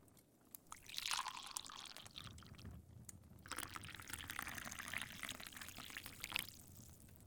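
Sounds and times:
drink pouring into a glass: 0.7s - 2.7s, 3.5s - 7.1s.

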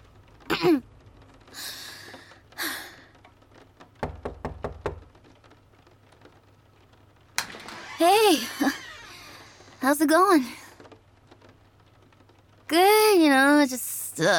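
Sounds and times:
speech: 0.6s - 0.9s, 9.8s - 10.6s, 12.7s - 14.3s
firm knocks on a door: 4.0s - 5.2s.

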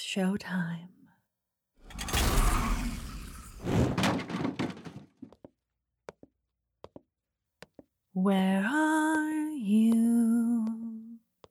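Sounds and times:
speech: 0.1s - 1.0s, 8.2s - 10.7s
heavy door swinging open with a loud scraping rush: 1.8s - 5.0s
sharp clicks and knocks of a heavy door settling: 3.6s - 5.1s.

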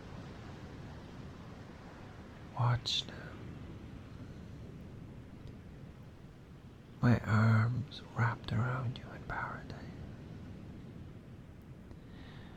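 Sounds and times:
ocean surf rushing: 0.0s - 11.4s
speech: 2.6s - 3.3s, 7.0s - 9.9s
person whispering: 2.6s - 3.4s, 7.0s - 10.0s.

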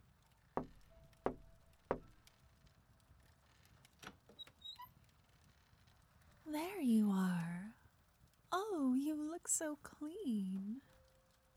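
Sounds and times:
firm knocking on a door: 0.6s - 2.2s
speech: 6.5s - 7.5s, 8.6s - 10.9s.

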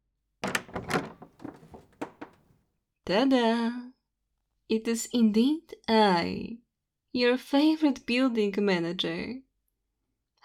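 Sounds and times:
knocks on a door: 0.4s - 2.4s
speech: 3.1s - 3.9s, 4.7s - 9.4s.

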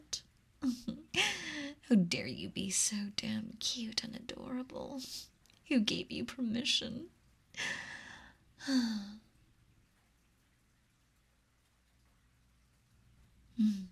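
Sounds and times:
soft airy slow breathing: 1.2s - 1.8s, 7.6s - 9.3s
speech: 1.9s - 7.9s, 8.6s - 9.2s, 13.6s - 13.9s.

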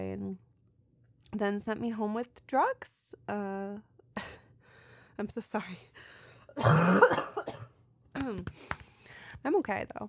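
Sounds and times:
speech: 1.2s - 4.4s, 5.2s - 7.3s, 8.2s - 8.8s, 9.4s - 10.0s
harsh cough: 6.6s - 7.8s.

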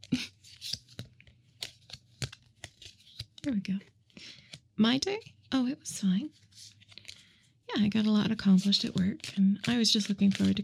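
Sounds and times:
rainbow-colored stack of cards being shuffled: 0.0s - 3.5s, 6.3s - 10.6s
speech: 3.5s - 4.0s, 4.8s - 6.4s, 7.7s - 10.6s.

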